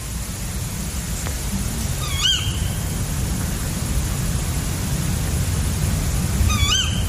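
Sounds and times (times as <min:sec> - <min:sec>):
low rumble of night-time noise: 0:00.0 - 0:07.0
tawny owl contact calls: 0:02.0 - 0:02.7.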